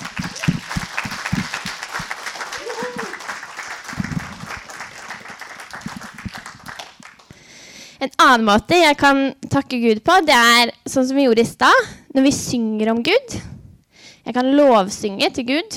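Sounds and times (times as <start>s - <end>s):
audience clapping hands: 0.0s - 7.4s
speech: 8.0s - 13.5s, 14.2s - 15.7s.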